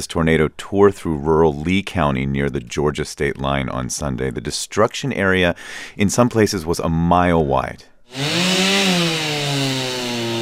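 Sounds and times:
speech: 0.0 - 8.7
chainsaw cutting through piles of wood: 8.1 - 10.4.

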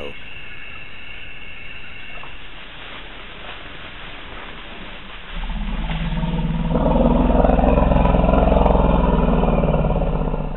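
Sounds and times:
elephant call: 0.0 - 3.2, 5.4 - 10.5.

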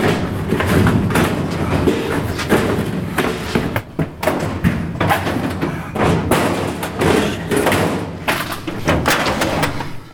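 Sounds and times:
stuck metal filing cabinet drawer thuds and clanks: 0.0 - 10.1.

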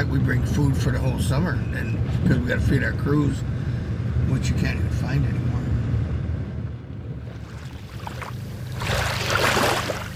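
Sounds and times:
boat engine drone along a bay shoreline: 0.0 - 10.1
wind: 0.0 - 10.1
speech: 0.1 - 5.6
rushing water: 7.3 - 10.1.

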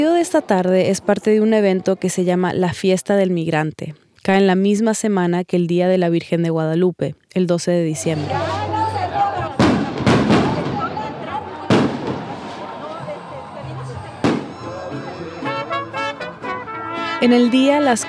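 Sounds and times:
outdoor crowd voices: 0.0 - 2.4, 8.0 - 18.0
speech: 0.0 - 8.7, 17.2 - 18.0
fireworks bursting with booming cracks: 9.6 - 13.1, 14.2 - 14.8.

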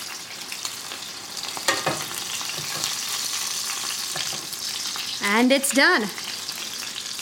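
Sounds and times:
cutlets frying in oil in a swirled pan: 0.0 - 7.2
speech: 5.2 - 6.2.

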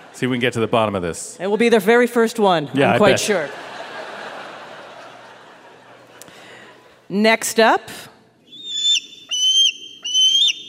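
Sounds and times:
speech: 0.2 - 3.8, 7.1 - 8.1
laughter: 2.9 - 7.0
bald eagle whistled squeals: 8.5 - 10.6.

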